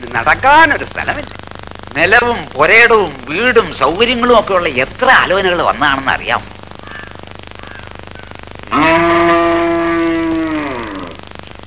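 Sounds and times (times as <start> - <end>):
speech: 0.0 - 6.5
cow mooing: 8.7 - 11.2.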